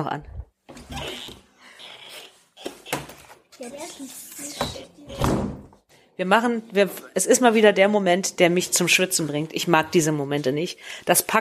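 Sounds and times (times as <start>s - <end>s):
speech: 0.0s - 0.3s, 3.6s - 5.5s, 6.2s - 11.4s
door closing with a thud: 4.6s - 5.8s.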